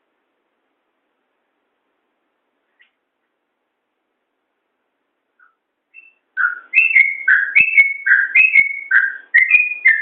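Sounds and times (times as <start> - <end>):
yellow-vented bulbul singing: 5.4 - 10.0.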